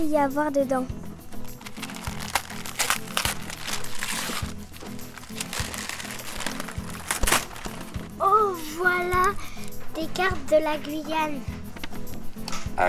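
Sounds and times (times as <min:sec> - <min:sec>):
speech: 0:00.0 - 0:01.0, 0:08.8 - 0:11.5
low rhythmic background: 0:00.0 - 0:12.8
paper crinkling and tearing as a large gift package is unwrapped: 0:01.4 - 0:08.1.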